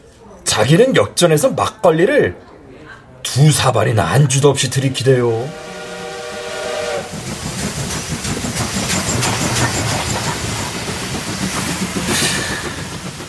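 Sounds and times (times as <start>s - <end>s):
speech: 0.5s - 2.5s, 3.3s - 5.7s
train rumbling on tracks: 4.2s - 13.2s
train whistle blast: 5.4s - 7.2s
train wheels clattering on tracks: 7.1s - 13.2s.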